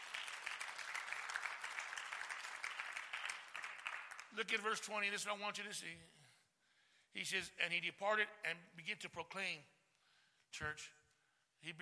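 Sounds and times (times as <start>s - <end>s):
church audience clapping hands: 0.0s - 4.9s
speech: 4.3s - 6.2s, 7.1s - 9.8s, 10.5s - 11.0s, 11.6s - 11.7s.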